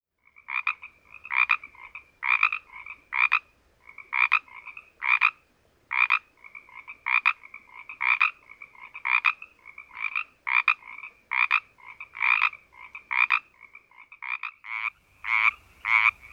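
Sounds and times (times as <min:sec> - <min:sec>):
Pacific tree frog giving raspy ribbits: 0:00.2 - 0:16.3.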